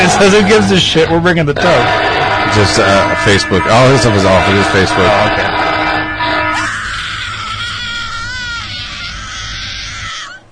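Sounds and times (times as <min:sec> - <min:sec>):
speech: 0:00.2 - 0:05.7
shrill wavering canned scream sound effect: 0:01.6 - 0:08.0.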